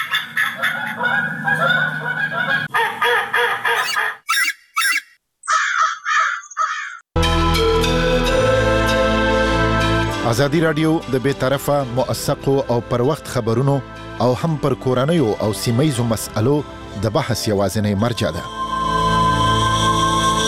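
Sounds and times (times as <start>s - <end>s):
birds honking and cawing at a protected wetland: 0.0s - 7.0s
music: 7.2s - 20.4s
speech: 10.3s - 18.6s.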